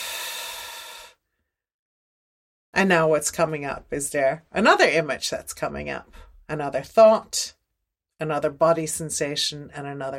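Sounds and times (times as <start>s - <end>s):
deep breath during a calming exercise: 0.0s - 1.6s
speech: 2.8s - 7.6s, 8.2s - 10.1s.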